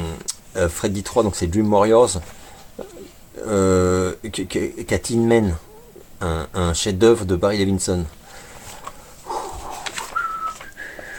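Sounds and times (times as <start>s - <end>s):
speech: 0.6s - 2.4s, 3.4s - 8.2s
person whistling a short soft tune: 10.0s - 11.1s.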